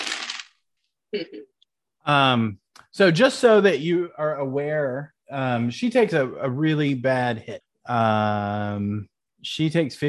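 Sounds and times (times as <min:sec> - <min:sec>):
dice tumbling across a hard tabletop: 0:00.0 - 0:00.5
speech: 0:01.1 - 0:10.0.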